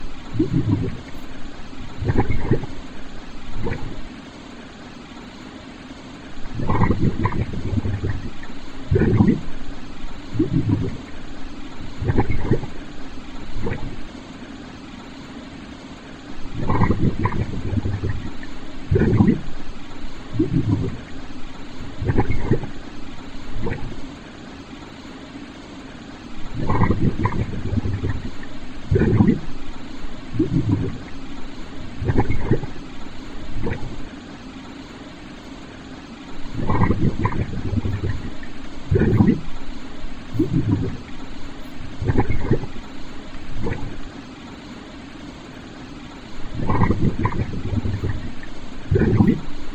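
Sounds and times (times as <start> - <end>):
bubbling: 0.1 - 4.2, 6.4 - 14.2, 16.3 - 24.2, 26.4 - 34.4, 36.3 - 44.2, 46.2 - 49.7.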